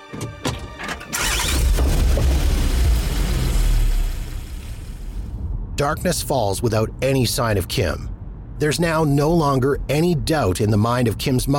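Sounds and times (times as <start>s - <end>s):
car engine starting, revving and pulling away from a family home: 1.0s - 5.4s
speech: 5.8s - 11.5s.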